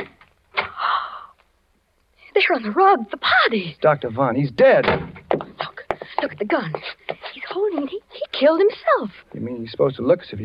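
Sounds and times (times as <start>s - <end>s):
speech: 2.5s - 5.5s, 6.2s - 7.0s, 7.6s - 10.4s
room door squeaky creak swinging open: 4.6s - 5.6s.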